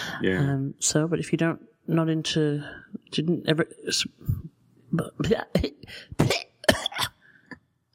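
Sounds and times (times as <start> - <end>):
speech: 0.2 - 4.4, 4.9 - 6.4
person hacking coughs and throat-clearing: 6.2 - 7.2.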